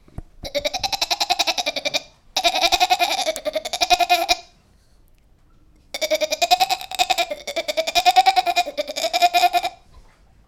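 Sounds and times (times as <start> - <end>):
goat bleating in long quavering calls with fast vibrato: 0.5 - 4.4, 6.0 - 9.8.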